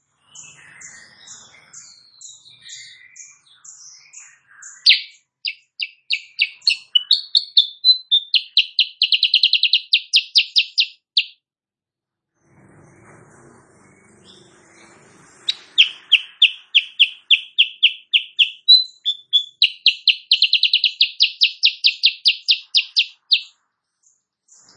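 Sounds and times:
Sooty-headed bulbul singing in the morning: 0.3s - 11.4s, 14.0s - 24.7s.

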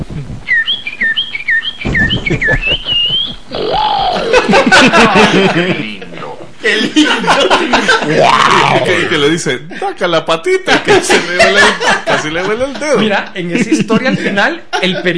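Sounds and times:
speech: 0.2s - 0.6s, 2.3s - 5.9s, 6.6s - 15.1s
parakeet chirping: 0.5s - 4.5s
people chuckling: 1.8s - 9.9s, 10.7s - 15.1s.

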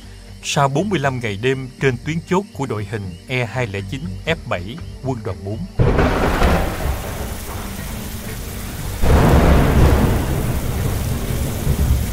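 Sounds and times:
speech: 0.4s - 6.2s
heavy rain pouring through a stormy night: 5.8s - 12.1s
thunder rumbling: 5.8s - 12.1s.

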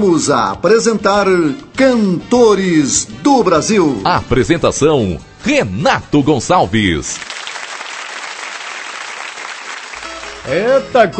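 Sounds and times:
speech: 0.0s - 7.3s, 10.4s - 11.1s
studio audience applauding during a televised singers' music program: 7.2s - 10.4s.

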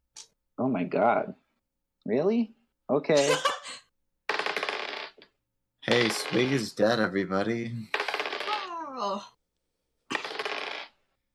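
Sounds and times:
speech: 0.6s - 1.4s, 2.0s - 3.5s, 5.8s - 8.0s, 9.0s - 9.4s
many dice being rolled together: 4.3s - 5.2s, 5.9s - 6.8s, 7.9s - 8.6s, 10.1s - 11.0s.

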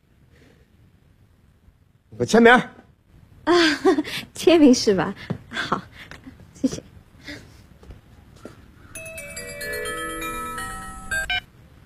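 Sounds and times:
speech: 2.2s - 2.8s, 3.5s - 5.4s
electronic telephone ringtone: 9.0s - 11.5s.

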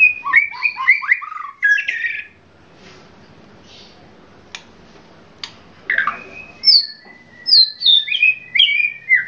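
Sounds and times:
Oriental magpie-robin song: 0.0s - 2.4s, 5.9s - 9.2s.

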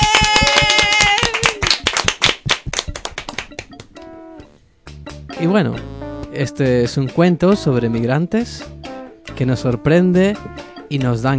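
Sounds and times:
passengers aboard a plane applauding: 0.0s - 3.8s
speech: 5.4s - 8.8s, 9.4s - 11.3s.

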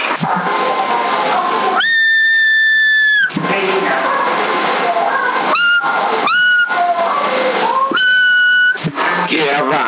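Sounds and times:
CB radio hiss: 0.0s - 9.8s
whistling over a CB radio on channel 10 in the 27 MHz band: 1.8s - 3.4s, 5.5s - 7.0s, 7.7s - 8.9s.

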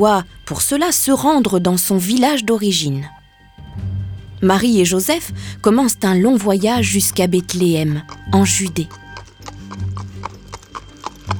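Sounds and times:
speech: 0.0s - 3.2s, 4.4s - 9.0s
low hum: 0.0s - 9.3s
small donkey hooves clip-clopping along a road: 5.6s - 11.3s.

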